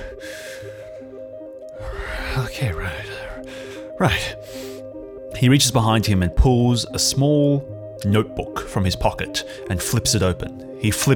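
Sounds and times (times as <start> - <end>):
man breathing heavily: 0.0 - 2.4, 3.0 - 5.1
speech: 2.5 - 3.1, 4.0 - 4.5, 5.4 - 11.1.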